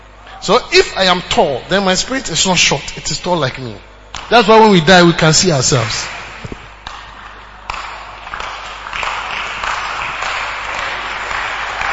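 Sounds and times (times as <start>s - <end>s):
speech: 0.5s - 6.2s
audience clapping: 6.8s - 11.9s.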